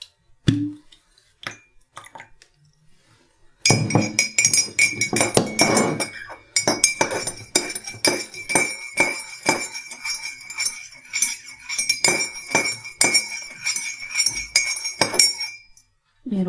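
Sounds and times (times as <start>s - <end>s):
teaspoon clinking against a glass while stirring vinegar into egg dye: 3.6s - 15.9s.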